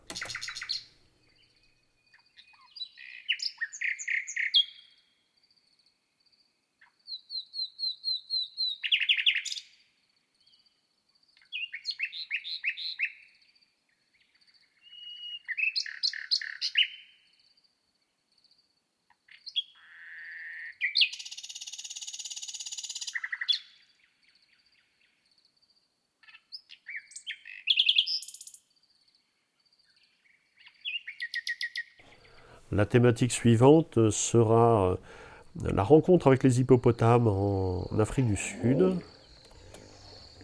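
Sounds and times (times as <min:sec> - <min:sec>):
common nightingale singing: 0:00.0 - 0:05.4, 0:06.8 - 0:17.6, 0:19.2 - 0:25.5, 0:26.2 - 0:40.4
speech: 0:32.7 - 0:39.1.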